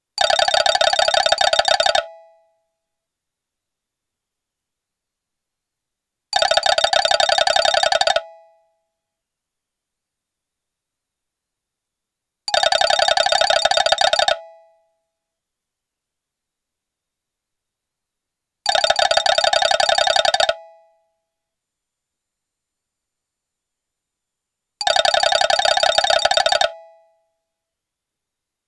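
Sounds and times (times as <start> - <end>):
old Malaysian phone: 0.1 - 2.5, 6.3 - 8.6, 12.5 - 14.8, 18.6 - 21.0, 24.8 - 27.2.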